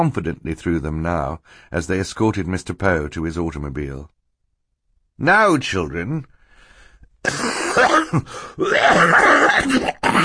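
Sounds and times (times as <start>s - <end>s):
speech: 0.0s - 4.2s, 5.2s - 6.3s, 7.2s - 7.5s, 8.1s - 10.2s
rough coughing into a handkerchief: 7.2s - 10.2s.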